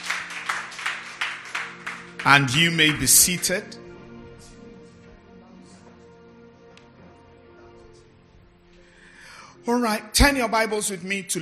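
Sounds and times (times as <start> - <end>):
crowd of people clapping hands in a steady rhythm: 0.0 - 3.6
speech: 2.2 - 3.8, 9.8 - 11.4.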